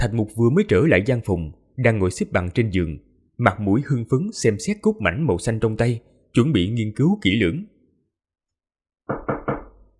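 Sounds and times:
speech: 0:00.0 - 0:07.7
knocking on the door of a stone chamber in a palace: 0:09.0 - 0:09.9.

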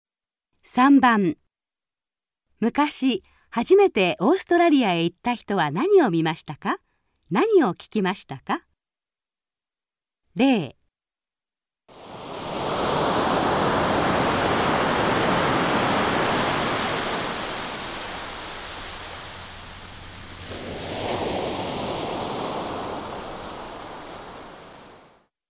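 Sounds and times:
speech: 0:00.6 - 0:01.4, 0:02.6 - 0:08.7, 0:10.4 - 0:10.8
ocean waves at sea: 0:11.9 - 0:25.3.

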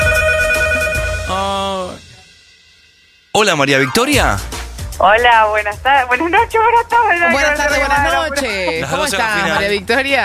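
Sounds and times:
telephone ringing with electronic ring tones: 0:00.0 - 0:01.3
speech: 0:03.4 - 0:10.2
laughter: 0:07.3 - 0:10.1.

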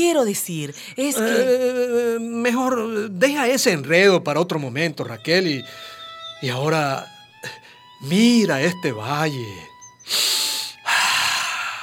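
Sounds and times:
speech: 0:00.0 - 0:10.4
deep breaths of fresh air: 0:05.7 - 0:06.2, 0:10.0 - 0:11.8.

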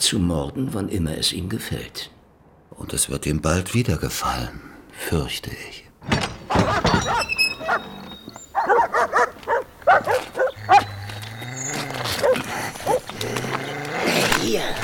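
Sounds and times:
speech: 0:00.0 - 0:08.0
pet dogs barking: 0:06.5 - 0:14.0.

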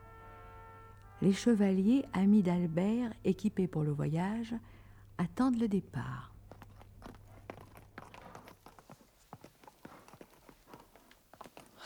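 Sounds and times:
horses' hooves clattering restlessly on the ground at a castle: 0:00.0 - 0:11.8
speech: 0:01.2 - 0:06.3.

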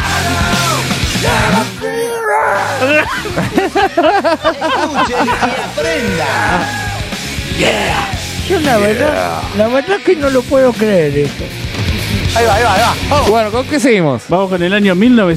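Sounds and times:
person yelling close to the microphone: 0:00.0 - 0:03.2, 0:05.2 - 0:10.0
music on an evening radio show: 0:00.0 - 0:15.3
laughter: 0:02.5 - 0:09.4
speech: 0:03.0 - 0:06.9, 0:07.6 - 0:15.3.

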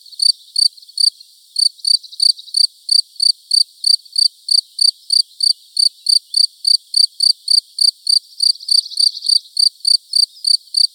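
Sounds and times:
field cricket chirping in Buoux Vaucluse France: 0:00.0 - 0:10.9
speech: 0:00.3 - 0:00.8, 0:03.0 - 0:04.1.

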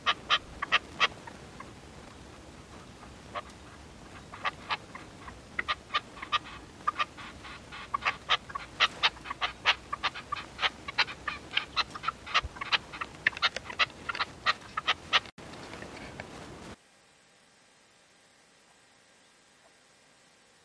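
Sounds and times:
partridge or tinamou song of harsh scratchy notes: 0:00.0 - 0:15.3
constant hiss: 0:00.0 - 0:20.6.

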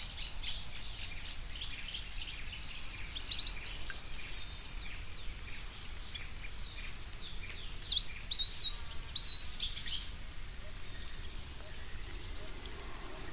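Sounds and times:
background hiss: 0:00.0 - 0:13.3
bird whistling and chirping: 0:02.6 - 0:05.0, 0:06.8 - 0:12.5.

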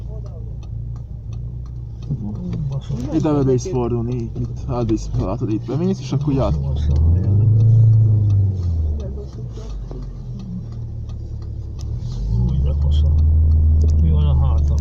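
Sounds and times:
speech: 0:02.1 - 0:07.8
car passing by: 0:05.1 - 0:14.7.

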